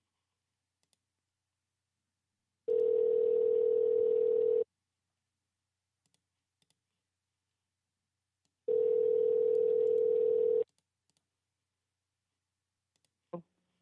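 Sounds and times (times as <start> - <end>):
long steady telephone dial tone: 2.7 - 4.6, 8.7 - 10.6.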